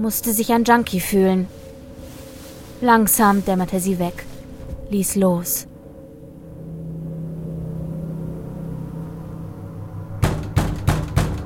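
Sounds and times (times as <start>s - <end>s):
speech: 0.0s - 1.6s, 2.8s - 4.3s, 4.9s - 5.7s
steady low droning hum: 0.0s - 11.4s
heavy pounding on an apartment door: 10.2s - 11.4s.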